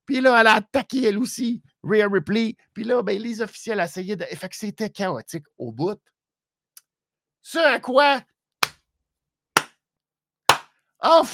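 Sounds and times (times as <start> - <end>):
speech: 0.2 - 6.1, 7.4 - 8.3, 11.0 - 11.3
single person clapping hands: 10.5 - 10.7.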